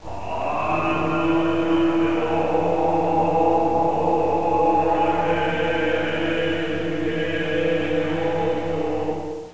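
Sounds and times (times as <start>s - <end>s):
monks chanting: 0.0s - 9.5s.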